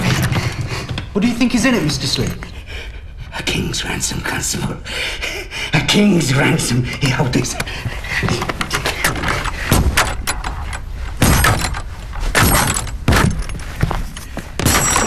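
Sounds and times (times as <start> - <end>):
scraping and rattling: 0.0 - 2.6, 7.0 - 15.0
wood creaking: 0.0 - 2.6, 6.8 - 15.0
speech: 1.2 - 2.5, 3.4 - 8.6
wooden chest being forced and broken open with cracks and thuds: 8.3 - 15.0.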